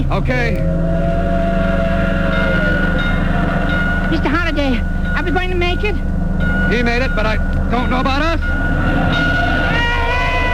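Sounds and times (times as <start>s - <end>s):
speech: 0.0s - 0.8s, 4.1s - 9.3s
train passing a crossing rumbling: 0.0s - 10.5s
sustained train horn tone: 0.6s - 4.3s, 8.7s - 10.5s.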